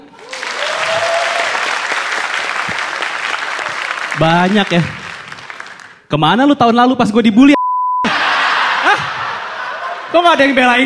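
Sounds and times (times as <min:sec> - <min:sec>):
crowd in a room applauding: 0:00.0 - 0:06.0
speech: 0:04.2 - 0:05.0, 0:06.1 - 0:07.6, 0:10.1 - 0:10.8
laughter: 0:08.0 - 0:10.8.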